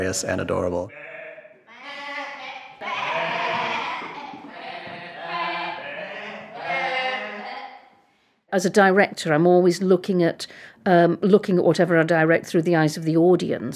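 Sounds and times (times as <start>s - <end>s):
speech: 0.0s - 1.1s, 8.5s - 13.7s
actors in sheep costumes bleating like a flock of sheep in a children's stage production: 0.9s - 7.9s.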